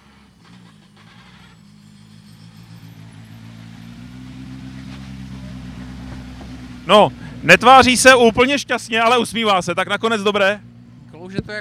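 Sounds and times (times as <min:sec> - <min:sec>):
rally car engine arriving at rally stage finish: 0:00.0 - 0:11.5
speech: 0:06.9 - 0:10.7, 0:11.3 - 0:11.5.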